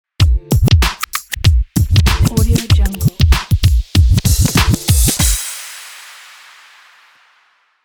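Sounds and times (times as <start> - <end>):
hip hop record scratch logo: 0.6 - 5.4.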